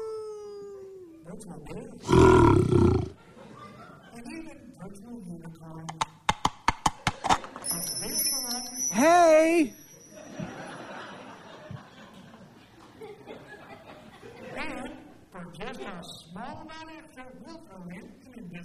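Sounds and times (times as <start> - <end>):
speech: 1.4 - 3.0, 4.2 - 6.2, 7.4 - 9.8, 15.4 - 18.6
virtual pet wolf growling: 2.0 - 3.2
laughter: 3.2 - 4.2, 10.2 - 14.9.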